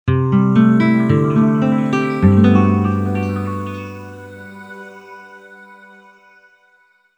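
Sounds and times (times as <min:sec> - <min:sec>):
synthesized windy nylon guitar on a V-Synth: 0:00.1 - 0:04.9.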